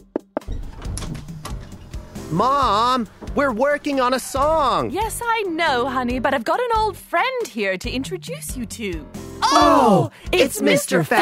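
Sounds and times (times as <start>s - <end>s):
speech: 2.3s - 11.2s
knocking on a door: 3.1s - 3.4s.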